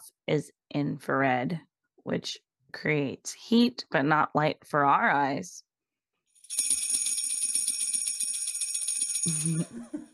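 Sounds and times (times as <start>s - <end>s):
speech: 0.3s - 5.7s, 9.2s - 10.0s
Christmas sleigh bells ringing: 6.4s - 9.8s.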